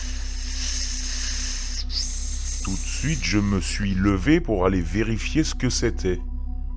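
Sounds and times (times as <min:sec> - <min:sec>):
faint steady hiss in a hallway: 0:00.0 - 0:03.8
low electrical-sounding hum indoors: 0:00.0 - 0:06.7
speech: 0:02.7 - 0:06.3.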